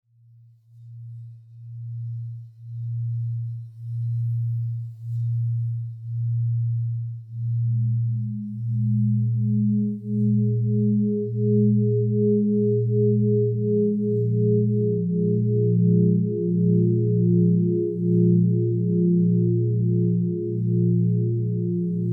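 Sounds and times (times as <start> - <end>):
distortion test: 0.8 - 22.1.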